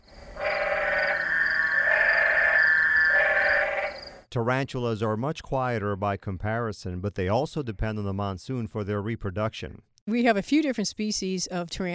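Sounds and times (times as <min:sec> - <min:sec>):
spadefoot toad giving drawn-out bleating calls at temporary desert pools: 0:00.0 - 0:04.2
speech: 0:04.4 - 0:11.9.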